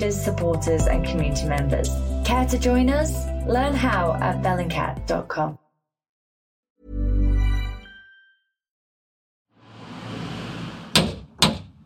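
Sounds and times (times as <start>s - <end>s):
speech: 0.0s - 5.6s
heavy metal door knocker striking a front door: 10.9s - 11.8s.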